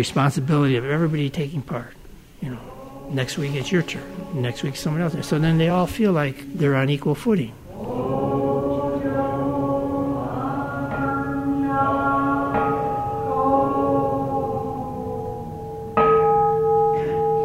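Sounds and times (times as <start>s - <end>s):
speech: 0.0s - 8.0s
Buddhist temple bell kansho being struck: 9.3s - 17.4s.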